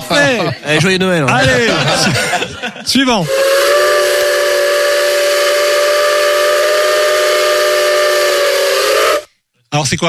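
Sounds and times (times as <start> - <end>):
laughter: 0.0 - 3.0
speech: 0.1 - 3.5, 9.7 - 10.0
steam locomotive whistle blowing a long sustained note: 3.2 - 9.3.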